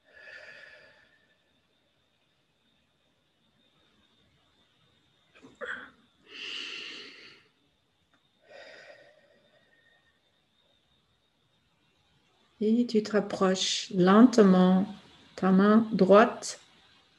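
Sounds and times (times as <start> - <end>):
slow soft breathing during a guided relaxation exercise: 0.0 - 1.8, 5.4 - 7.6, 8.3 - 10.8
speech: 12.6 - 16.6.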